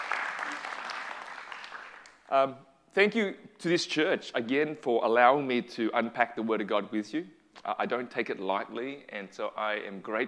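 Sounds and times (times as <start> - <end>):
audience crowd applauding: 0.0 - 2.3
speech: 2.3 - 10.2.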